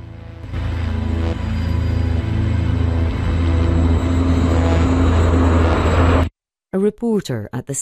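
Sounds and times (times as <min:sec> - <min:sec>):
helicopter engine drone: 0:00.5 - 0:06.3
speech: 0:06.8 - 0:07.8.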